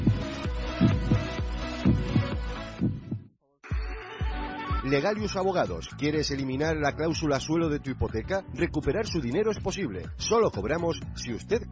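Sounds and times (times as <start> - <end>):
deep booming heartbeat: 0.0 - 3.3
speech: 4.9 - 11.7.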